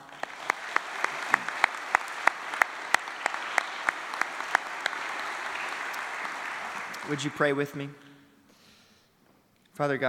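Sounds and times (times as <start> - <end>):
audience applauding graduating seniors: 0.0 - 7.8
speech: 7.1 - 8.0, 9.8 - 10.0.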